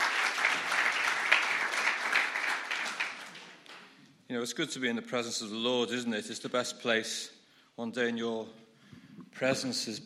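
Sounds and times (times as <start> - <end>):
audience applauding: 0.0 - 4.0
speech: 4.3 - 8.6, 9.4 - 10.0.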